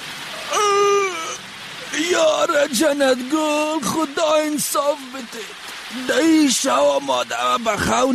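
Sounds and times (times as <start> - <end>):
flood water rushing: 0.0 - 8.1
high wailing cry: 0.4 - 2.6
speech: 2.4 - 8.1.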